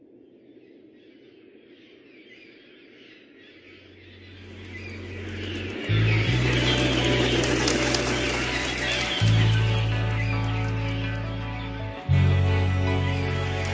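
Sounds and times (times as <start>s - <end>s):
chorus of many birds calling and chattering: 0.5s - 13.7s
low sustained musical drone: 4.0s - 13.7s.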